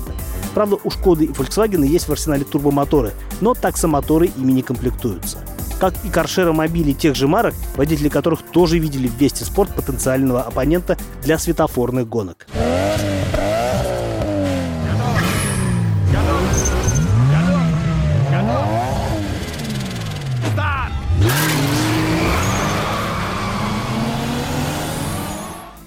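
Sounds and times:
speech: 0.6s - 12.6s
Vesta Sport sedan engine and exhaust revving through gears: 12.5s - 25.8s.

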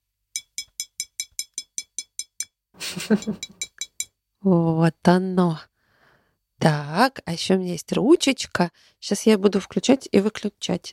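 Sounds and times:
tapping on a glass cup: 0.4s - 2.5s, 3.1s - 4.1s
short laugh: 2.8s - 3.6s
speech: 2.9s - 3.6s, 4.4s - 5.7s, 6.6s - 10.9s.

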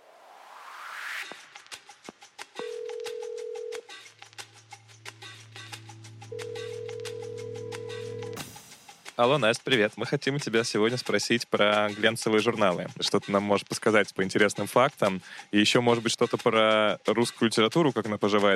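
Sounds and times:
telephone call tones as a number is dialed: 2.6s - 3.8s, 6.3s - 8.4s
low hum: 4.6s - 8.4s
speech: 9.2s - 18.5s.

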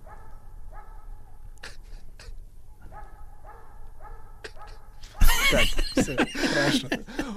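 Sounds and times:
dog barking: 0.0s - 1.5s, 2.8s - 5.4s
laughter: 4.5s - 7.3s
speech: 5.5s - 7.3s.

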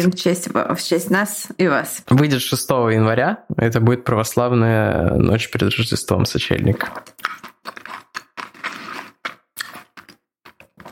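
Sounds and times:
speech: 0.0s - 7.1s
person chewing a tangerine: 6.7s - 10.8s.

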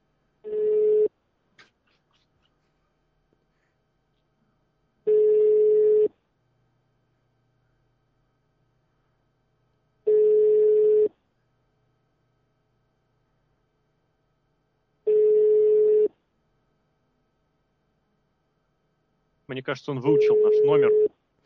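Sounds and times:
outgoing phone call ringback tone beeps: 0.4s - 1.1s, 5.1s - 6.1s, 10.1s - 11.1s, 15.1s - 16.1s, 20.0s - 21.1s
speech: 19.5s - 21.2s.

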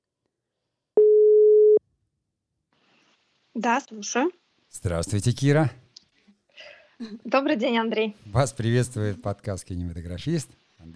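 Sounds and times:
telephone ringback tone from an outgoing phone call: 1.0s - 1.8s
speech: 3.6s - 5.8s, 7.0s - 10.9s.

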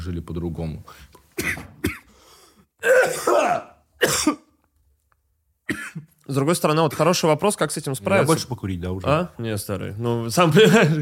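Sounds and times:
speech: 0.0s - 1.6s, 3.1s - 4.4s, 6.3s - 11.0s
person coughing in rough throaty bursts: 1.4s - 2.2s, 2.8s - 4.5s, 5.7s - 6.1s.

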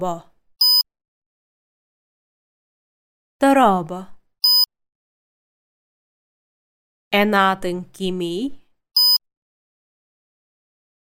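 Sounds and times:
speech: 0.0s - 0.3s, 3.4s - 4.2s, 7.1s - 8.6s
short electronic beep cueing repetition in a language lesson: 0.6s - 0.8s, 4.4s - 4.7s, 9.0s - 9.2s.

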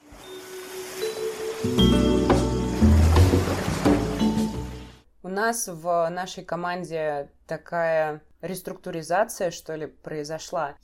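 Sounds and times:
ocean surf: 0.0s - 5.0s
speech: 1.6s - 2.3s, 5.4s - 10.8s.

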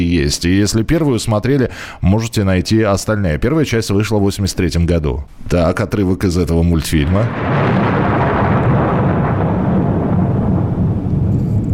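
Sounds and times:
speech: 0.1s - 7.8s
cartoon explosions rumbling: 7.0s - 11.7s.

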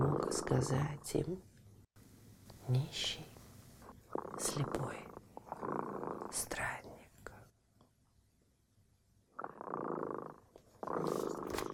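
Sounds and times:
speech: 0.3s - 1.5s, 2.7s - 3.3s, 4.4s - 6.5s
cat purring: 3.0s - 6.9s, 9.3s - 11.7s.

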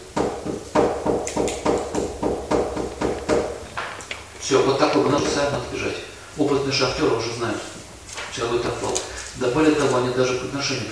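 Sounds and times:
sharp knocks imitating knocking before a mine collapse: 0.1s - 4.2s, 5.0s - 5.8s
speech: 4.5s - 7.8s, 8.4s - 10.8s.

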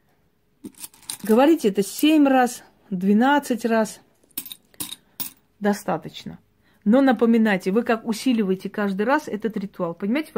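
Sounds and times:
coins being lifted and dropped: 0.6s - 2.1s, 4.2s - 5.4s
speech: 0.6s - 4.1s, 5.6s - 10.3s.

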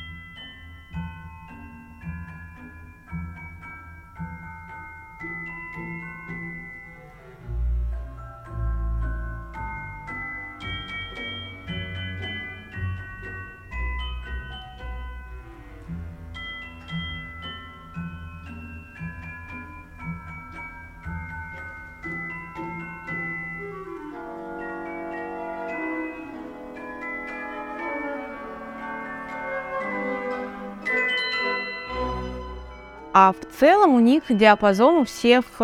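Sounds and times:
fuller lower instrumental accompaniment: 0.0s - 35.6s
orchestral bells glockenspiel melody: 0.0s - 35.6s
speech: 33.2s - 35.6s.

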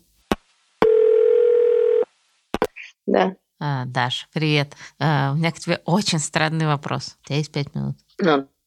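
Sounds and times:
buzzy phone line ringback tone as a call is placed: 0.8s - 2.1s
speech: 3.1s - 8.5s.

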